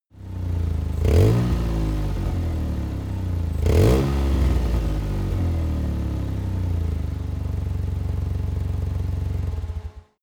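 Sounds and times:
small car buggy engine revving up: 0.2s - 9.8s.

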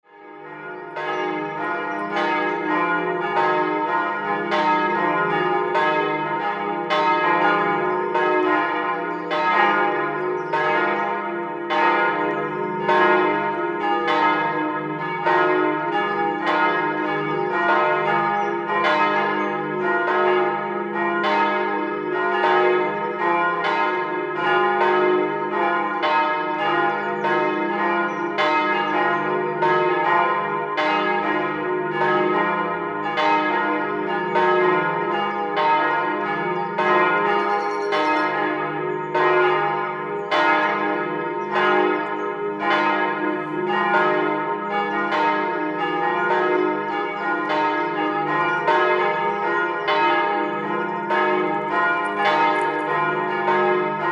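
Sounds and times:
church bell: 0.0s - 54.0s
birds in background: 0.5s - 4.9s, 5.8s - 13.5s, 15.2s - 20.3s, 24.9s - 31.0s, 33.9s - 43.0s, 46.0s - 53.3s.

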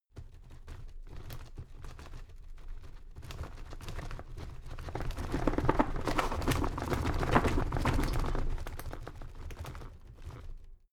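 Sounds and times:
paper rattling: 4.4s - 10.2s.

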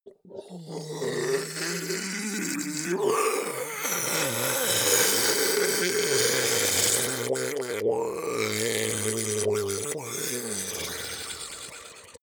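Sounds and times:
ice golem melting groan: 0.4s - 12.2s.

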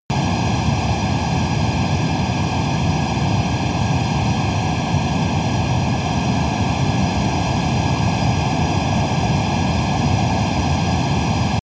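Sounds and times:
military jet fighter turbine running steady and soft: 0.1s - 11.6s.

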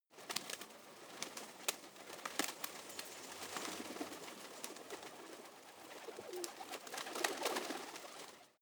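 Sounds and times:
pigeons fluttering: 0.1s - 8.6s.

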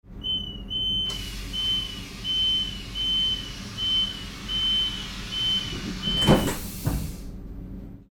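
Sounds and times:
train door closing: 1.0s - 7.4s.

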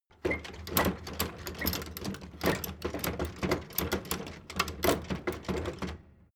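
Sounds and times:
loft door flap rattling: 0.2s - 6.2s.

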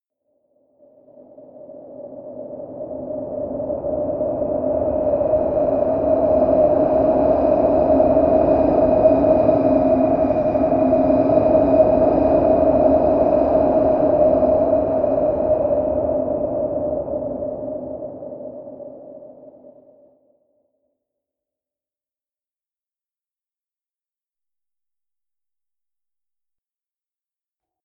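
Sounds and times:
wind across plains: 0.8s - 20.1s.

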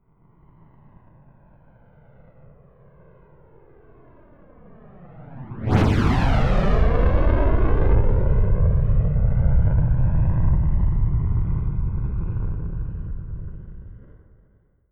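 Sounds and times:
space shuttle rocket fast flyby: 5.2s - 13.3s.

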